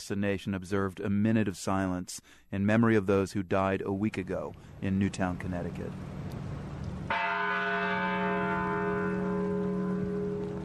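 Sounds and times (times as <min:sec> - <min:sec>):
speech: 0:00.0 - 0:06.4
single church bell tolling: 0:07.1 - 0:10.6.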